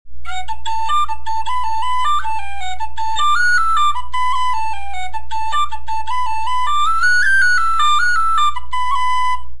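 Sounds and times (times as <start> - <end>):
tin whistle playing a jig: 0.2 - 9.5.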